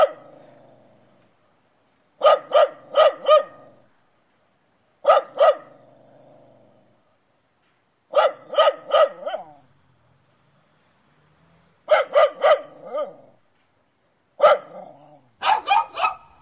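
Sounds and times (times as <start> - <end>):
dog barking: 0.0 - 0.3, 2.2 - 3.8, 5.0 - 5.8, 8.1 - 9.7, 11.9 - 13.4, 14.4 - 16.4.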